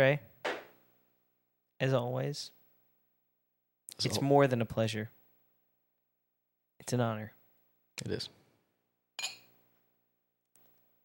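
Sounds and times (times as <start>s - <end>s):
speech: 0.0s - 0.3s, 1.8s - 2.6s, 4.0s - 5.2s, 6.8s - 7.4s, 8.0s - 8.4s
glasses clinking together: 9.2s - 9.6s.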